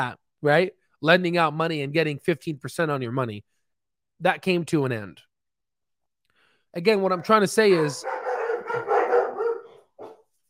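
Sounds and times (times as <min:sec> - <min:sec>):
speech: 0:00.0 - 0:03.5, 0:04.2 - 0:05.3, 0:06.8 - 0:08.9
dogs barking: 0:07.0 - 0:10.3.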